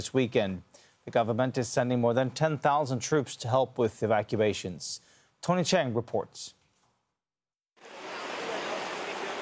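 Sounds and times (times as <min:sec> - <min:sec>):
speech: 0:00.0 - 0:06.6
heavy rain downpour in Bangkok Thailand during floods: 0:07.8 - 0:09.3.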